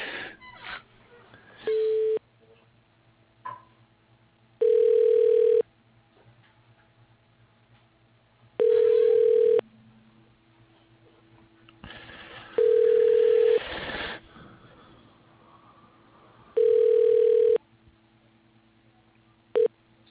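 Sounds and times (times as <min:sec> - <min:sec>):
faint low hum: 0:00.1 - 0:20.0
telephone ringback tone while a call is transferred to voicemail: 0:04.6 - 0:05.6, 0:08.6 - 0:09.6, 0:12.6 - 0:13.6, 0:16.6 - 0:17.6.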